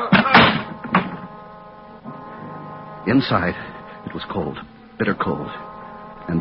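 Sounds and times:
heavy meat storage room door slamming shut: 0.1 - 1.1
speech: 3.1 - 5.7.

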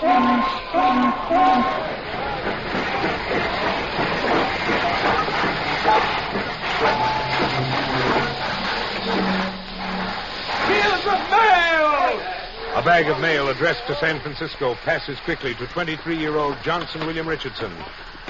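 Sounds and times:
brief tonal whistle-like notes of mail train: 0.0 - 2.0, 6.8 - 10.8
mail train pulling into railroad station hissing and rumbling: 0.0 - 18.2
speech: 12.9 - 18.1.

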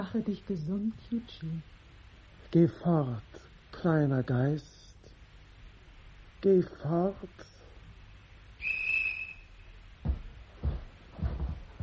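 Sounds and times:
speech: 0.0 - 1.8, 2.5 - 4.7, 6.4 - 7.6
sharp high whistle blast as a signal: 8.6 - 9.7
heavy low thumps or footsteps: 10.0 - 11.8.

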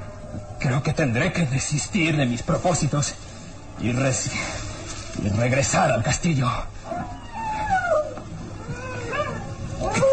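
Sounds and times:
steady hiss: 0.0 - 10.1
speech: 0.6 - 7.2
animal howling: 6.8 - 10.1.

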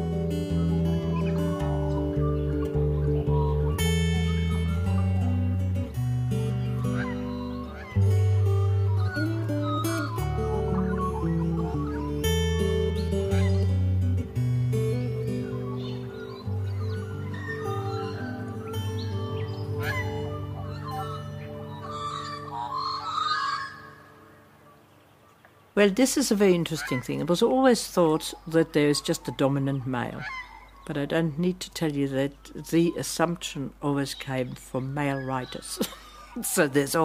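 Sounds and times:
sustained musical chords: 0.0 - 25.8
magpies warbling and calling: 0.1 - 37.0
speech: 25.8 - 37.0.

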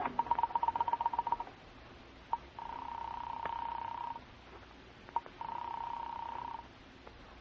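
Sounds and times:
long steady ringing tones on the telephone line: 0.0 - 1.6, 2.3 - 4.3, 5.1 - 6.7.

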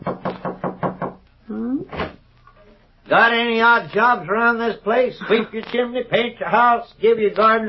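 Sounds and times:
knocking on a wooden back door: 0.0 - 1.2
speech: 3.1 - 7.6.

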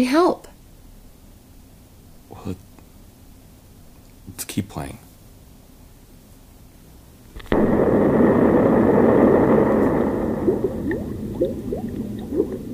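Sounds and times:
speech: 0.0 - 0.5, 2.4 - 2.7, 4.3 - 5.0
rising gurgling bubbles: 7.4 - 12.7
sudden loud burst: 7.4 - 12.7
steady rushing roar: 7.5 - 12.7.

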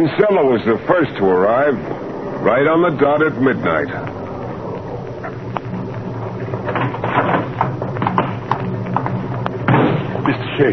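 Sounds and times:
speech: 0.0 - 4.2
low hum: 0.0 - 10.7
hooves of a horse-drawn cab clip-clopping: 3.7 - 10.5.

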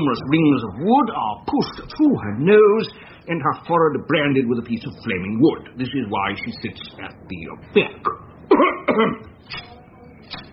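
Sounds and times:
speech: 0.0 - 9.7
person coughing: 8.5 - 9.3.

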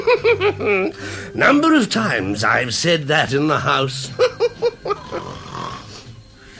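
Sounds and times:
laughter: 0.0 - 1.0, 4.0 - 5.5
speech: 0.1 - 4.6
man snoring while asleep: 4.8 - 6.5.

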